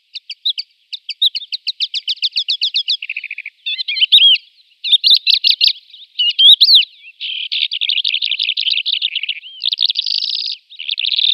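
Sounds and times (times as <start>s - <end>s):
calandra lark song: 0.0s - 11.3s.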